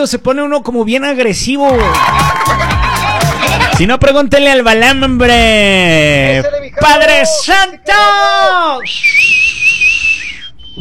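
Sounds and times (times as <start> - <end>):
speech: 0.0 - 2.7, 3.8 - 9.4
laughter: 1.8 - 3.9
person whistling loudly: 8.7 - 10.8.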